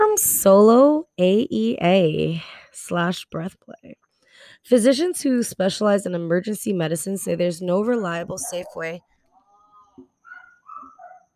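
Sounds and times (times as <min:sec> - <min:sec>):
speech: 0:00.2 - 0:04.0, 0:04.6 - 0:09.1
high-pitched dog barks and yelps: 0:08.4 - 0:09.0, 0:09.6 - 0:11.3.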